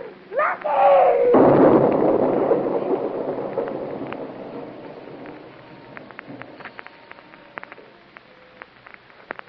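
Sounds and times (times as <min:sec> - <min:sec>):
scattered crackles: 0:00.0 - 0:09.4
brief shout: 0:00.3 - 0:01.4
falling debris: 0:00.6 - 0:09.4
massive truck explosion: 0:01.2 - 0:07.8.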